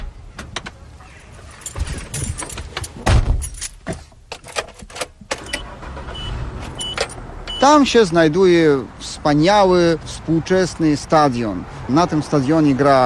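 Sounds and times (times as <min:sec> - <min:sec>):
keys jangling: 0:01.5 - 0:03.8
car door thumping: 0:03.0 - 0:04.0
speech: 0:07.6 - 0:13.0.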